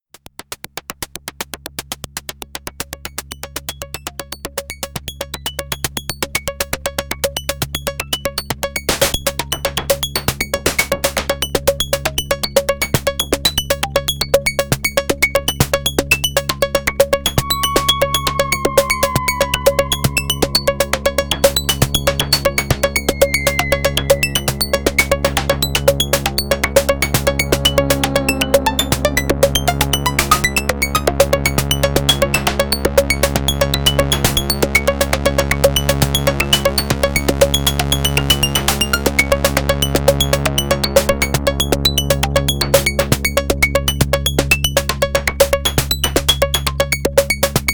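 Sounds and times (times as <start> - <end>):
Sequential Prophet5 synthesizer effects: 6.5 - 47.4.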